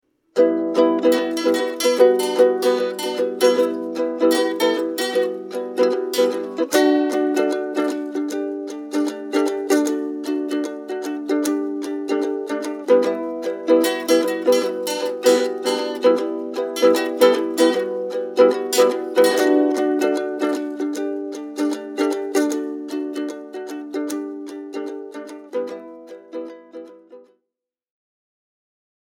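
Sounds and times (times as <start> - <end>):
cardboard ukulele being tested: 0.3 - 27.3.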